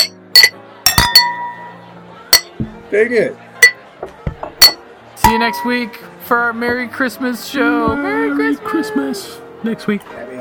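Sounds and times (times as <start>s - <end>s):
glasses clinking in a toast: 0.0s - 2.6s, 3.6s - 6.0s
speech: 2.9s - 3.4s, 5.3s - 10.3s.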